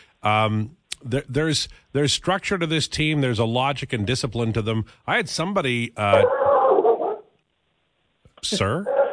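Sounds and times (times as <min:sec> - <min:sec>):
speech: 0:00.2 - 0:06.4, 0:08.4 - 0:09.0
Australian Shepherd dog barking: 0:06.2 - 0:07.4, 0:08.8 - 0:09.1.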